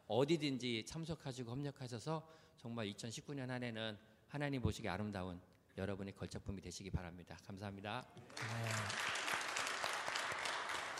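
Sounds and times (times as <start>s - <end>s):
speech: 0.1s - 9.2s
crowd in a church clapping: 8.2s - 10.9s.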